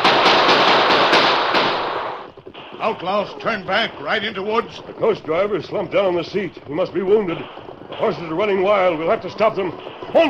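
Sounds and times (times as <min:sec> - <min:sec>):
rapid gunfire from drawn handguns in a Western adventure radio drama: 0:00.0 - 0:03.9, 0:07.1 - 0:09.1
speech: 0:02.8 - 0:10.2.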